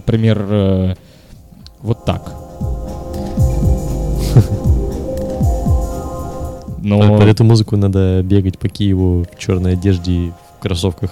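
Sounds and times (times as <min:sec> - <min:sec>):
speech: 0:00.1 - 0:01.1, 0:01.8 - 0:02.4, 0:06.8 - 0:11.1
low droning hum: 0:02.2 - 0:06.8
deep booming drum beats in a shamanic trance rhythm: 0:02.4 - 0:07.0.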